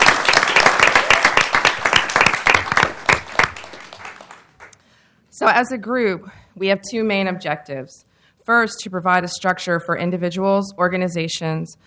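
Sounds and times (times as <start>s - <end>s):
audience applause: 0.0s - 4.8s
speech: 5.4s - 11.8s.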